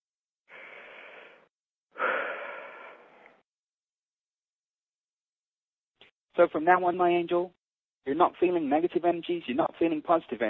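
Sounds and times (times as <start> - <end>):
deep breath drawn slowly: 0.5 - 3.4
speech: 6.4 - 10.4.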